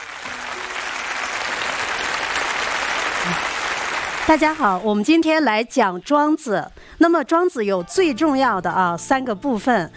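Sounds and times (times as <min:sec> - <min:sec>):
large audience clapping: 0:00.0 - 0:04.8
speech: 0:04.3 - 0:09.9.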